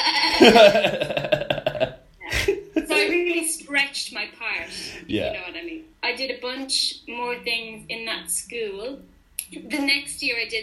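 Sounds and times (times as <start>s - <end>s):
person imitating a sheep bleat: 0.0s - 0.5s
laughter: 0.0s - 3.2s
speech: 0.4s - 1.2s, 4.4s - 10.6s.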